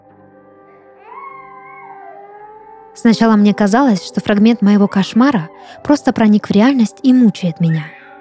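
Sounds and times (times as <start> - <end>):
child's high piercing cry in compartments of a space station: 1.0 - 2.8
speech: 3.0 - 8.0.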